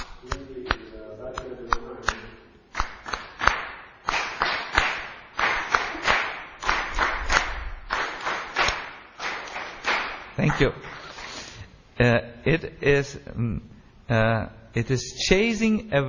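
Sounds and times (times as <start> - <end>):
hands clapping during kirtan: 0.0 - 11.1
speech: 10.6 - 11.0, 12.0 - 16.0.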